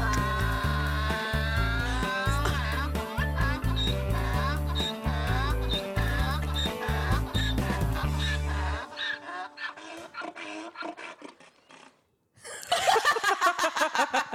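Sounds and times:
bouncy backing track: 0.0 - 9.0
laughter: 0.0 - 10.1, 12.4 - 14.3
donkey braying comic sound effect: 0.0 - 12.1.

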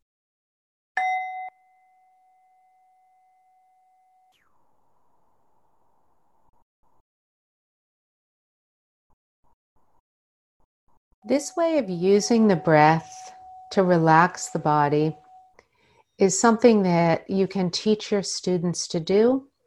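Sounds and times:
single bell struck and ringing: 1.0 - 3.7, 11.3 - 15.5
speech: 11.2 - 15.2, 16.2 - 19.5.

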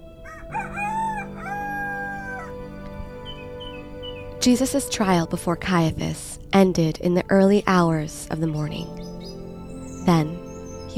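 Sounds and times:
rooster crowing: 0.2 - 3.8
speech: 4.4 - 9.0, 10.1 - 10.9.

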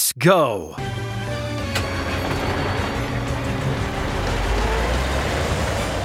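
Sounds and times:
speech: 0.2 - 0.9
vehicle engine rumble driving through city streets: 1.6 - 6.0
broadband road noise: 1.7 - 6.0.

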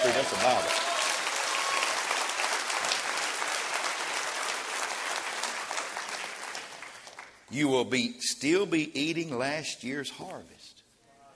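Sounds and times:
large crowd applauding during a sermon: 0.0 - 7.4
speech: 0.2 - 0.9, 7.5 - 10.8.

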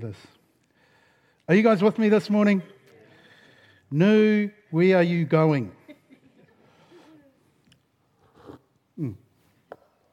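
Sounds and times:
speech: 0.0 - 0.4, 1.5 - 2.7, 3.9 - 5.8, 9.0 - 9.2
person slurping a drink: 8.2 - 8.8.

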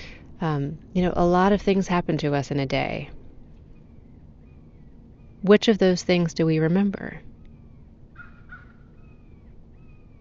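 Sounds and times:
low hiss: 0.0 - 10.1
speech: 0.4 - 3.2, 5.4 - 7.3
thin bird calls: 3.4 - 5.5, 7.2 - 10.1
crow cawing: 7.6 - 10.1.

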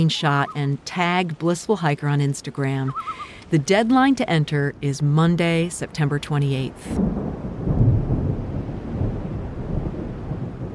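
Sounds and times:
speech: 0.0 - 7.5
steady rain: 0.0 - 10.7
low rumbling roll of thunder: 7.0 - 10.7.

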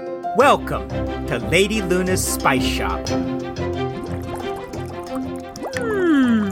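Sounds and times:
speech: 0.3 - 4.5
wet pops and drips: 3.1 - 6.5
liquid bubbling while being heated: 3.2 - 6.5.

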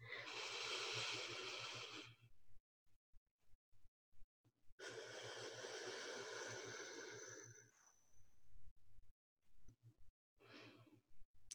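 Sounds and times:
slow breathing in and out through the nose: 0.0 - 2.2, 4.8 - 7.8.

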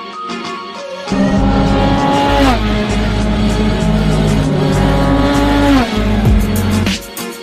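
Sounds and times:
race car engine roaring and revving on a racing circuit: 1.1 - 7.0.

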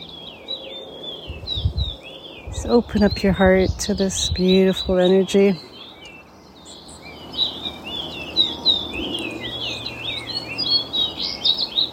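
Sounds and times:
birds singing by a lake: 0.0 - 11.9
low rumble of wind or water: 0.8 - 5.5
speech: 2.6 - 5.7.

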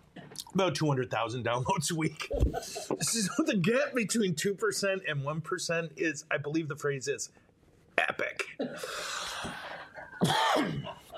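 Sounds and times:
speech: 0.5 - 7.5, 8.2 - 9.2
person coughing: 8.6 - 9.0, 10.2 - 11.0.

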